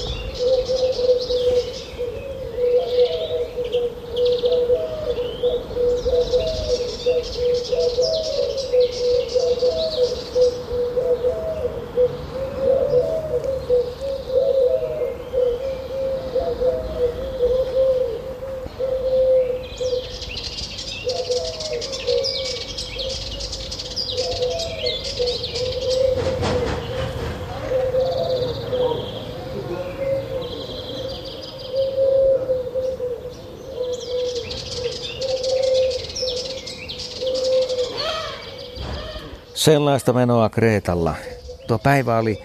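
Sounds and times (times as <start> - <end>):
Eurasian collared dove cooing on Crete: 0.0 - 39.5
small birds chirping and twittering: 0.0 - 42.4
speech: 39.6 - 42.4.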